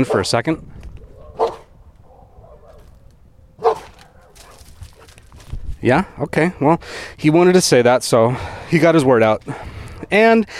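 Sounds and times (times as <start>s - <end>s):
dog barking: 0.0s - 0.4s, 1.1s - 2.9s, 3.6s - 5.1s
speech: 0.0s - 0.7s, 5.8s - 10.5s.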